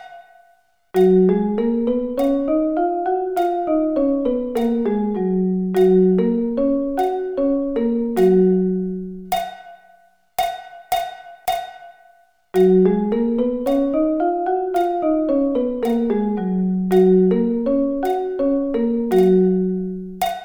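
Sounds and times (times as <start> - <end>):
G flat musical scale: 1.0 - 9.3, 12.6 - 20.4.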